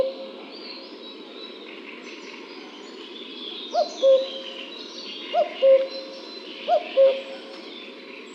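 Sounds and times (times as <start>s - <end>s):
other birds twittering faintly: 0.0s - 8.3s
Common cuckoo calling: 5.3s - 6.0s, 6.7s - 7.4s.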